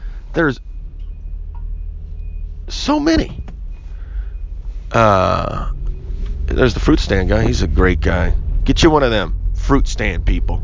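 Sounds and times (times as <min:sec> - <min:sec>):
garbage truck engine rumbling: 0:00.0 - 0:10.6
speech: 0:00.4 - 0:00.7, 0:02.9 - 0:03.4, 0:04.9 - 0:05.8, 0:06.5 - 0:10.6
garbage truck high-pitched reversing beep: 0:00.4 - 0:02.7, 0:03.7 - 0:06.5.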